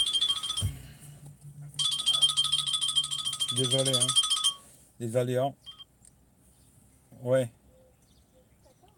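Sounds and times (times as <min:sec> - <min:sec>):
phone ringing with a shrill electronic ringtone: 0:00.0 - 0:00.9, 0:01.8 - 0:04.8, 0:05.6 - 0:05.9
speech: 0:03.5 - 0:04.2, 0:05.0 - 0:05.6, 0:07.2 - 0:07.6.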